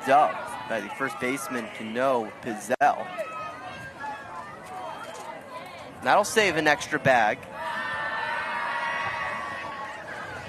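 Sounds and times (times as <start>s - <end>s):
speech: 0.0s - 3.4s, 6.0s - 7.5s
baseball crowd cheering encouragement for pitcher: 0.0s - 10.4s.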